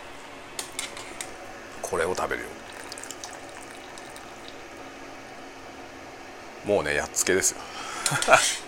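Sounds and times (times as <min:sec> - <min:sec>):
speech: 0:01.9 - 0:02.8, 0:06.6 - 0:08.6
water pouring and splashing back into a pot from lifted spaghetti: 0:02.6 - 0:04.8.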